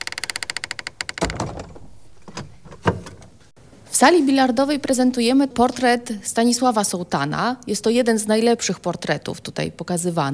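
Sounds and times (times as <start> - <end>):
heavy palace door creaking open: 0.0 - 3.4
speech: 3.9 - 10.3.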